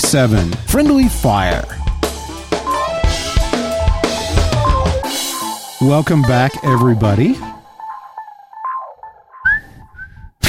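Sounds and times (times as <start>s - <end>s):
speech: 0.1s - 1.8s, 5.8s - 7.6s
person whistling a theme tune: 1.8s - 7.8s.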